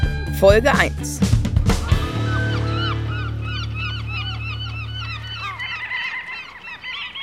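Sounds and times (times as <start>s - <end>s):
speech: 0.4s - 1.4s
flock of little auks calling as they fly: 1.8s - 7.2s.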